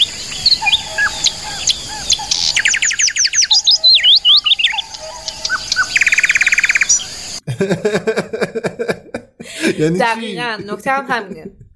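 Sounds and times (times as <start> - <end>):
several pigeon-like birds chirping and twittering outdoors: 0.0 - 7.5
laughter: 7.4 - 11.7
speech: 7.6 - 8.7, 9.8 - 11.6.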